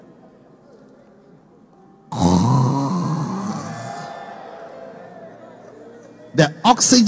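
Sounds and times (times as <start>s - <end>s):
voice imitating a heavy raspy snore: 2.1s - 4.0s
speech: 6.4s - 7.0s.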